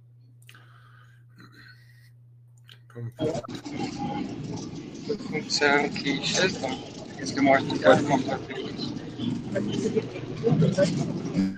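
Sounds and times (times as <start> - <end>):
indistinct voices: 1.3 - 11.5
speech: 2.9 - 11.5
dense street traffic rumble from a traffic jam heard through a call: 3.2 - 11.5.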